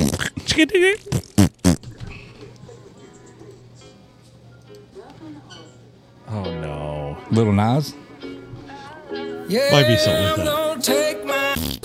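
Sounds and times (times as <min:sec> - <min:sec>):
remixed fart sound effects: 0:00.0 - 0:02.0, 0:11.5 - 0:11.8
voices: 0:00.0 - 0:10.6
speech: 0:00.2 - 0:01.5, 0:07.3 - 0:08.0, 0:09.5 - 0:11.2.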